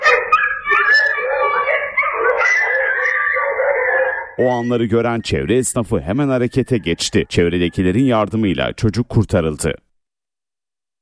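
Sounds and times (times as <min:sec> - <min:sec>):
group of dogs barking and whimpering: 0:00.0 - 0:05.3
speech: 0:04.4 - 0:09.8.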